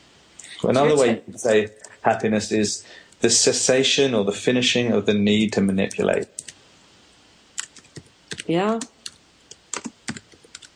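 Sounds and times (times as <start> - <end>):
speech: 0.6 - 6.5, 8.5 - 8.9
typing on a computer keyboard: 5.9 - 6.6, 7.6 - 10.7.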